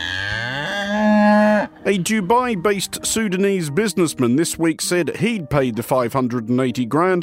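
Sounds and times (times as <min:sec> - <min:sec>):
cow mooing: 0:00.0 - 0:01.9
speech: 0:01.9 - 0:07.2.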